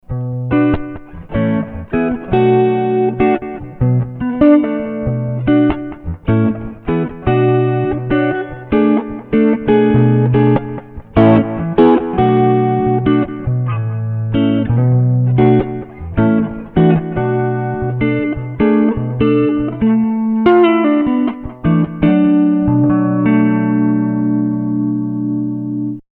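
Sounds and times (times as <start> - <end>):
clean jazz preset tone: 0.0 - 26.0.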